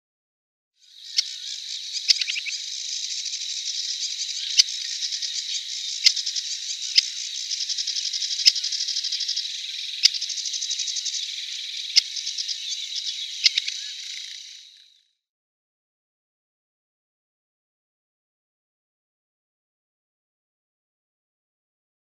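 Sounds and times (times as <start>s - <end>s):
Aquatic Warbler calls: 0.8s - 15.0s.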